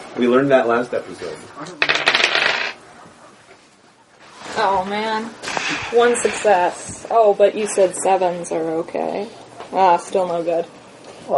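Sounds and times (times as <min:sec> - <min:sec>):
speech: 0:00.2 - 0:02.1, 0:04.6 - 0:11.3
dice clattering in a tabletop game: 0:01.8 - 0:02.8.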